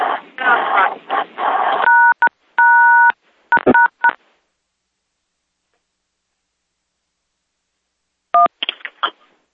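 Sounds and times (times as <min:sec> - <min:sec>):
voice-like noise: 0:00.0 - 0:01.9
touch-tone keypad dialing beeps on a call line: 0:01.8 - 0:04.2.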